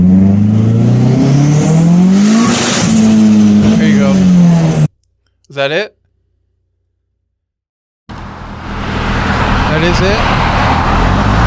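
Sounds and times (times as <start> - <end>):
car engine revving hard under acceleration in first gear: 0.0 - 4.9, 8.1 - 11.4
speech: 5.6 - 6.0.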